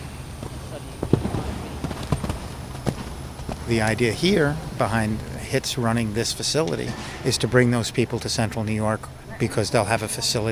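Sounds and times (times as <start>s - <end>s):
horse hooves thudding during show jumping demonstration: 0.0s - 5.7s
low rumbling background: 0.0s - 10.5s
speech: 3.7s - 10.5s.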